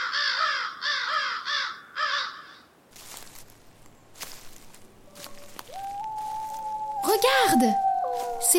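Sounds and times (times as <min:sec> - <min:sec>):
crows cawing: 0:00.0 - 0:02.7, 0:05.1 - 0:08.5
speech: 0:07.2 - 0:07.9.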